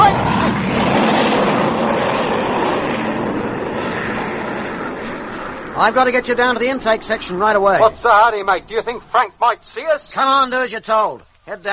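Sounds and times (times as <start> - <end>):
fighter plane engine roaring overhead: 0.0 - 9.2
speech: 5.8 - 11.7.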